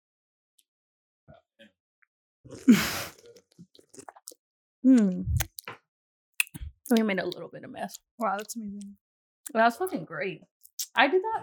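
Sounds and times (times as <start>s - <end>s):
speech: 2.5s - 3.1s, 4.8s - 5.4s, 6.9s - 11.4s
person slurping a sip of a mixed drink: 2.5s - 4.4s, 5.0s - 5.7s, 6.4s - 7.0s, 7.9s - 8.6s, 10.6s - 11.0s
wet mouth clicks: 2.5s - 5.7s, 6.4s - 10.0s, 10.6s - 11.0s
person exhaling a satisfied voiced ahh: 2.7s - 3.2s.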